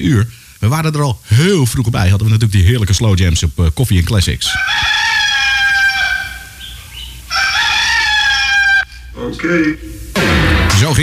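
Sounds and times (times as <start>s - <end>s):
speech: 0.0s - 5.0s, 9.3s - 10.0s, 10.8s - 11.0s
chicken clucking: 4.5s - 8.9s
rooster crowing as a morning wake-up alarm: 4.5s - 9.1s.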